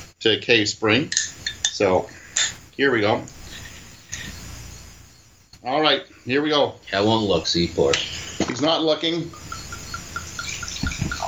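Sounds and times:
speech: 0.2s - 1.2s, 1.8s - 2.2s, 2.8s - 3.4s, 5.6s - 9.4s
faint regular chirping tone: 1.2s - 11.2s
sweet wine pouring from a half bottle into a glass: 9.9s - 11.2s.

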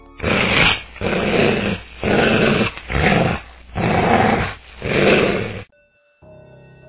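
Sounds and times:
hungry lions growling deep and raspy: 0.2s - 5.7s.

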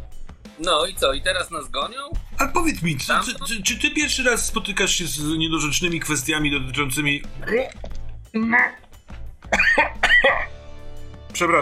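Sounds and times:
speech: 0.6s - 8.8s, 9.7s - 10.5s, 11.4s - 11.6s
person clearing throat: 9.5s - 10.6s
person coughing in rough bursts: 9.5s - 10.6s.

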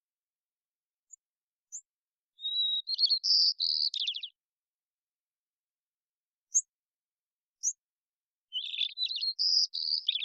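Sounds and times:
white-crowned sparrow thin high chip call: 1.1s - 4.4s, 6.5s - 6.7s, 8.5s - 10.2s
immature white-crowned sparrow Zonotrichia leucophrys singing: 1.1s - 4.5s, 6.4s - 6.8s, 7.6s - 7.9s, 8.5s - 10.2s.

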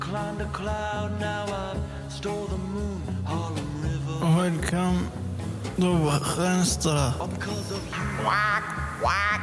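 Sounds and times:
speech: 0.1s - 5.2s, 5.8s - 9.4s
duck quacking: 7.9s - 9.4s.

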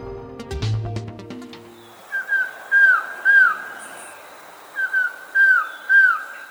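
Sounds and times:
collared trogon singing mellow down-slurred whistled notes: 1.7s - 6.4s.

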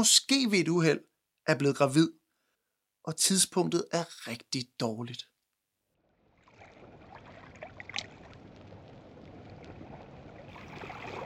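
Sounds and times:
speech: 0.0s - 2.2s, 3.0s - 5.3s
outdoor water lapping and swirling: 6.0s - 11.2s.

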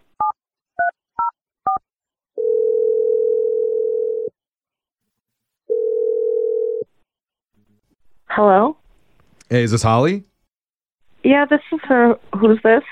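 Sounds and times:
long steady telephone line tones: 2.4s - 4.3s, 5.7s - 6.9s
speech: 8.4s - 8.8s, 9.5s - 10.3s, 11.2s - 12.9s.

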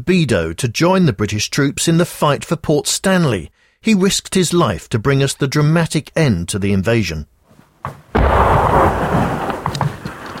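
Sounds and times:
speech: 0.0s - 8.0s
incoming artillery blast: 8.1s - 10.3s
heavy rolling rumble: 8.2s - 10.3s.

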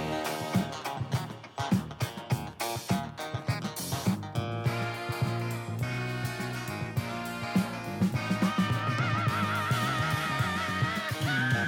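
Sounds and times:
bright horn section playing punchy chords in a funk song: 0.0s - 2.0s, 4.6s - 11.6s
driving drums and bass in a funk groove: 0.0s - 11.6s.

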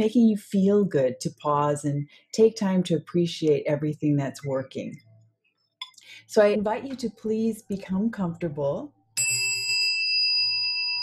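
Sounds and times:
speech: 0.0s - 5.0s, 6.1s - 9.0s
meditation chime ringing: 9.2s - 11.0s.

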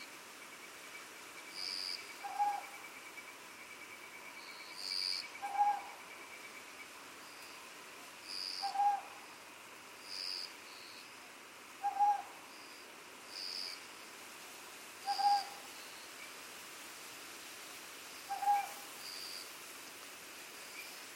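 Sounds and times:
continuous high insect chorus on Iriomote Island Okinawa Japan: 0.0s - 21.1s
owl giving paired hoots on Iriomote Island Okinawa Japan: 2.1s - 2.8s, 4.8s - 6.0s, 8.4s - 9.2s, 11.8s - 12.4s, 15.0s - 15.7s, 18.3s - 18.9s.

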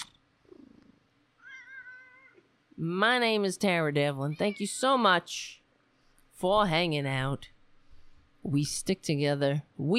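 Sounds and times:
cat meowing: 1.4s - 2.5s
speech: 2.8s - 5.6s, 6.4s - 7.5s, 8.4s - 9.9s.

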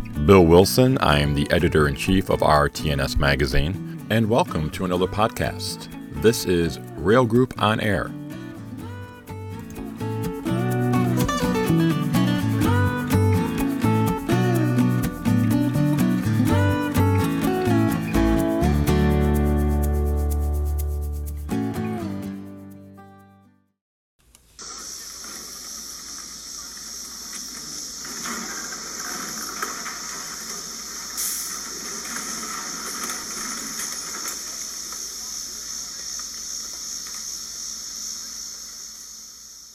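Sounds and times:
music: 0.0s - 23.7s
speech: 0.3s - 8.2s.

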